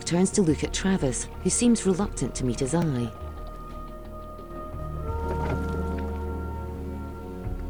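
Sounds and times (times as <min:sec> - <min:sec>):
small motorboat engine droning on a river: 0:00.0 - 0:07.6
speech: 0:00.1 - 0:03.3.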